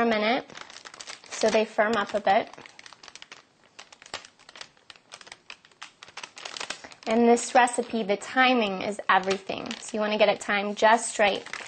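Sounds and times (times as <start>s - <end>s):
speech: 0.0s - 0.7s, 1.4s - 2.7s, 7.1s - 11.6s
parchment paper being peeled off: 0.6s - 7.1s.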